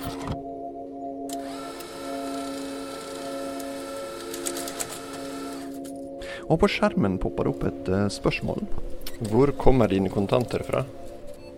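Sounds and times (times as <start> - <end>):
cash deposit machine whirring and humming while drawing in banknotes: 1.3 - 5.8
speech: 6.5 - 11.0.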